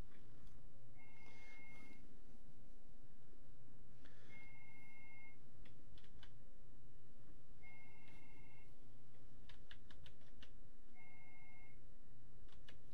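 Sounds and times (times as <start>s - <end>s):
low hum: 0.0s - 12.9s
telephone line ringing with incoming calls: 1.0s - 2.0s, 4.2s - 5.4s, 7.6s - 8.7s, 11.0s - 11.8s.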